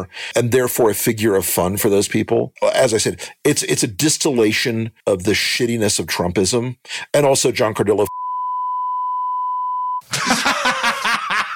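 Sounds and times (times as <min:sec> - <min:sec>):
speech: 0:00.0 - 0:08.2
censor bleep: 0:08.1 - 0:10.0
laughter: 0:10.1 - 0:11.5.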